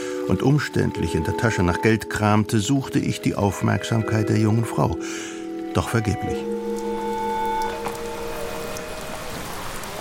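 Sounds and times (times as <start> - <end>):
steady rain pattering down: 0.0 - 9.9
speech: 0.3 - 6.6.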